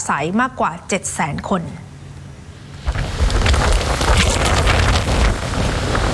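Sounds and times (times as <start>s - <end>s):
speech: 0.1s - 1.9s
strong gusting wind: 2.7s - 6.1s
heavy rain pouring: 2.8s - 6.1s.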